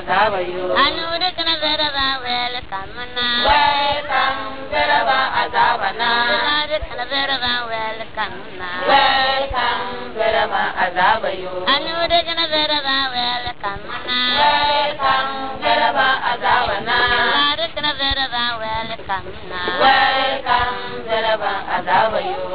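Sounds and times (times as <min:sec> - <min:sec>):
women in Navrongo: 0:00.8 - 0:22.5.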